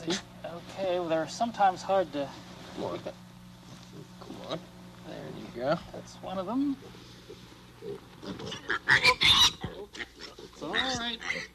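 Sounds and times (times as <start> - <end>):
speech: 0.0 - 0.3, 0.9 - 3.3, 4.5 - 4.7, 5.5 - 7.1, 7.8 - 11.5
pigs on a farm squealing and grunting while being loaded into a crate: 6.8 - 11.5.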